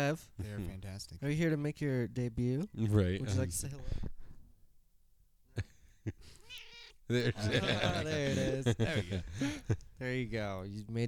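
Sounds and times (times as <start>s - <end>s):
speech: 0.0s - 4.2s, 5.6s - 11.0s
cat meowing: 6.4s - 7.1s
laughter: 7.1s - 9.9s.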